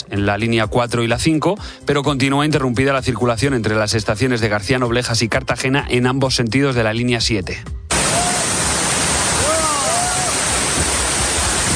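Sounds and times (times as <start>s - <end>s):
speech: 0.1s - 7.8s
heavy rain pouring down on a camp: 7.9s - 11.7s.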